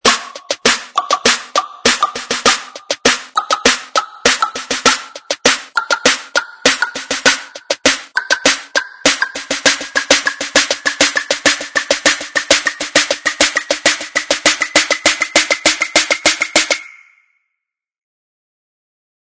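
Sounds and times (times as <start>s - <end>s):
drums building up at 100 BPM: 0.0s - 16.8s.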